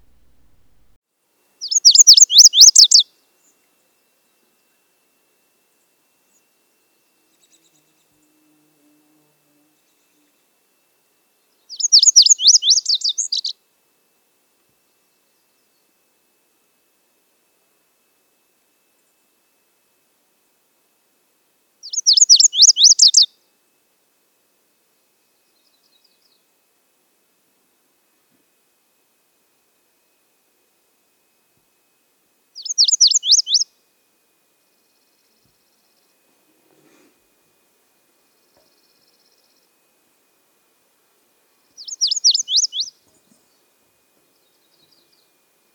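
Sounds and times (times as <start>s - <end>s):
lazuli bunting warbling song: 0.0s - 1.0s, 1.6s - 3.0s, 11.7s - 13.5s, 21.9s - 23.3s, 32.6s - 33.6s, 41.8s - 42.9s.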